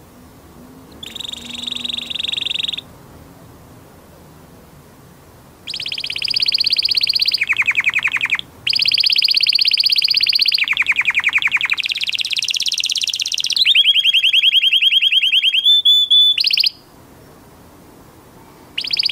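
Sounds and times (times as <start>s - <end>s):
Portuguese domestic canary singing trills: 0.9s - 2.9s, 5.6s - 16.9s, 18.7s - 19.0s.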